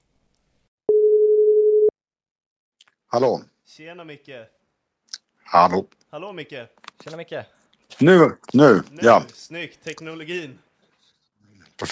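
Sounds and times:
outgoing phone call ringing tone: 0.9 - 1.9
speech: 3.1 - 4.6, 5.5 - 10.7.

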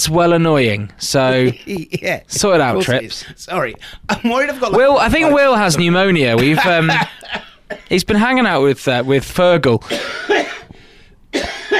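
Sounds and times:
speech: 0.0 - 10.6
laughter: 6.3 - 7.4
harsh coughs: 6.9 - 7.9, 9.8 - 10.7, 11.3 - 11.7.

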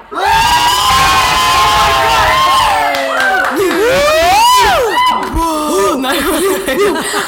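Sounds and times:
audience whooping and cheering: 0.0 - 5.4
audience laughing: 3.1 - 7.2.

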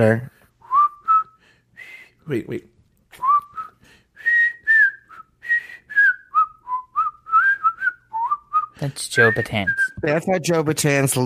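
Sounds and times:
speech: 0.0 - 0.3, 2.3 - 3.3, 8.8 - 11.2
person whistling a TV theme tune: 0.6 - 2.2, 3.2 - 10.0.

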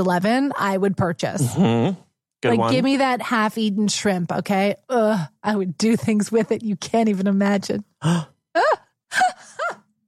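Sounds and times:
speech: 0.0 - 9.3
vocal gasp of reaction: 8.0 - 8.4.

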